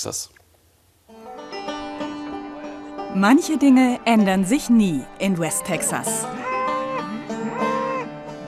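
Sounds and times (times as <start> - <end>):
speech: 0.0 - 0.4, 3.1 - 6.5
bulls bellowing and lowing while driven on horseback on a ranch in West Texas: 5.8 - 8.4.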